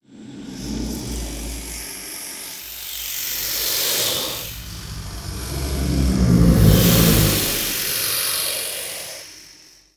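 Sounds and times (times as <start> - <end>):
serpent hissing: 3.4 - 8.2.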